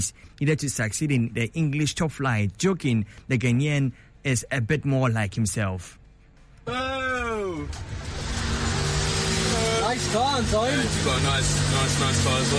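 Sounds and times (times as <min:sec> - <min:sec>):
speech: 0:00.0 - 0:06.0, 0:06.6 - 0:07.0, 0:07.6 - 0:08.1, 0:09.9 - 0:12.5
car engine revving: 0:07.6 - 0:12.5.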